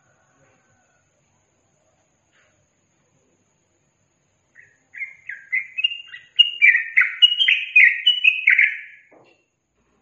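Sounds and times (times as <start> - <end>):
yellow-vented bulbul singing rolling liquid phrases: 4.5 - 9.1.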